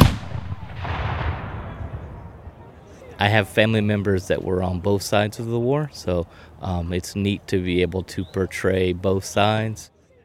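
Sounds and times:
cannon firing outdoors with a rolling echo: 0.0s - 2.4s
speech: 3.2s - 9.9s.

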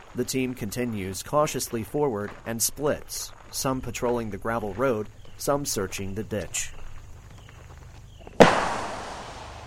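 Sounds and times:
speech: 0.2s - 6.8s
simulated IED explosion during a Marine patrol simulation: 8.4s - 9.6s.

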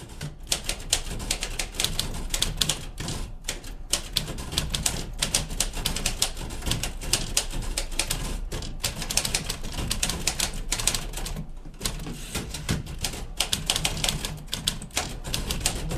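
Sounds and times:
two non-electric manual typewriters clacking: 0.0s - 15.9s.

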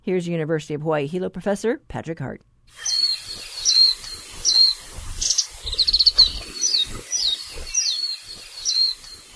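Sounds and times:
speech: 0.0s - 3.1s
warbling white-eye singing high thin chirping phrases: 2.8s - 9.3s.

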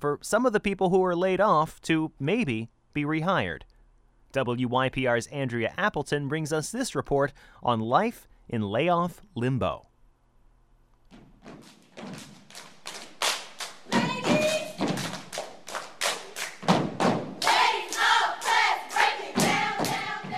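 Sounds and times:
speech: 0.0s - 3.7s, 4.3s - 9.9s
middle school step team stepping and clapping during a performance: 11.1s - 20.3s.

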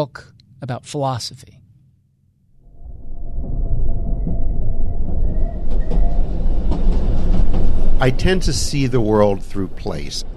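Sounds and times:
speech: 0.0s - 1.6s, 8.0s - 10.3s
train rolling along the rails: 2.6s - 10.3s
rhythmic clatter of train wheels on rails: 4.2s - 10.3s.

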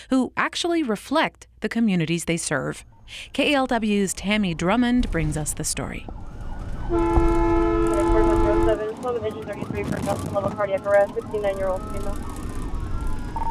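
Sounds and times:
speech: 0.0s - 6.3s, 6.9s - 7.3s, 8.0s - 12.4s
rumbling vehicle and road noise: 2.8s - 13.4s
green and white ambulance siren wailing: 4.0s - 13.4s
ambulance air horn blast: 6.9s - 8.8s.

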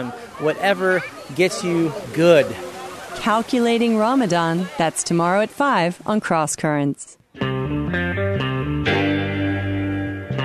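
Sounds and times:
speech: 0.0s - 8.0s
West Coast soul music with effects-laden chords: 7.4s - 10.4s.

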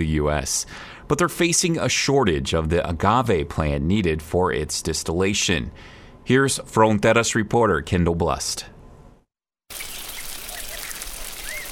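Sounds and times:
speech: 0.0s - 8.7s
sprinklers drizzling water onto agave seedlings at a ranch in Sonora Mexico: 9.7s - 11.7s
faint bird chirps: 9.8s - 11.7s.

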